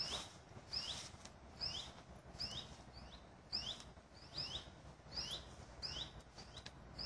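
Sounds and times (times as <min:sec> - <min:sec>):
juvenile common buzzard calling with high downward-sliding squeaks: 0:00.0 - 0:07.0
soft background hiss: 0:00.0 - 0:07.0.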